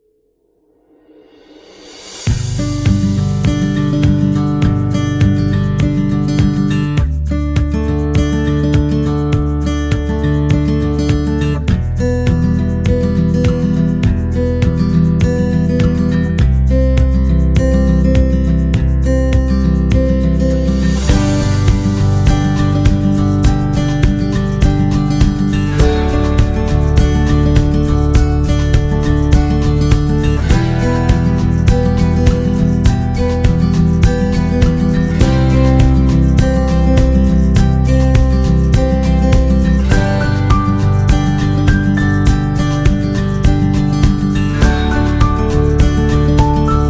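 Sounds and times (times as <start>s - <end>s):
acoustic guitar: 1.6s - 46.8s.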